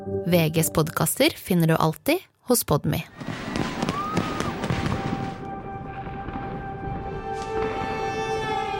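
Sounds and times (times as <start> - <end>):
speech: 0.3 - 3.4
fireworks exploding with pops, bangs and crackling: 3.1 - 8.7.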